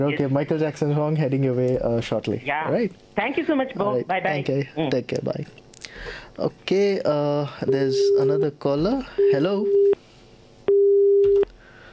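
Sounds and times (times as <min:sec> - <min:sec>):
speech: 0:00.0 - 0:09.9
telephone busy tone after a caller's line dropped: 0:10.7 - 0:11.5.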